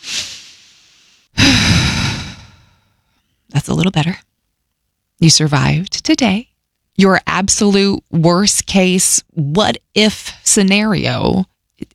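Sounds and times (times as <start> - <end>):
slow deep breath through the mouth and sighing exhale: 0.0 - 3.0
speech: 3.6 - 4.3, 5.2 - 11.9.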